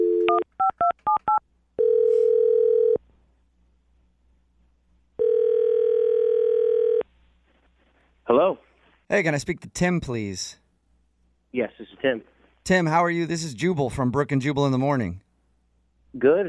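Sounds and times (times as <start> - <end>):
long steady telephone ringback tones: 0.0 - 0.8, 1.8 - 3.0, 5.2 - 7.0
telephone keypad dialing beeps: 0.2 - 1.4
speech: 9.1 - 10.6, 11.5 - 15.2, 16.1 - 16.4.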